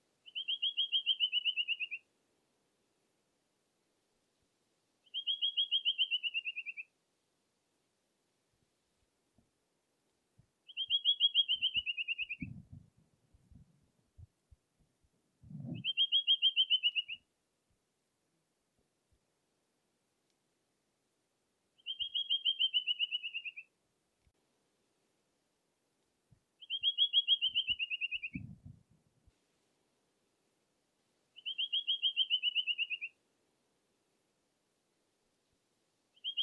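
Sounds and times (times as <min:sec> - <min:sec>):
rufous-winged antwren singing: 0:00.3 - 0:02.0, 0:05.1 - 0:06.9, 0:10.7 - 0:12.5, 0:15.7 - 0:17.2, 0:21.8 - 0:23.7, 0:26.6 - 0:28.5, 0:31.4 - 0:33.2, 0:36.2 - 0:36.4.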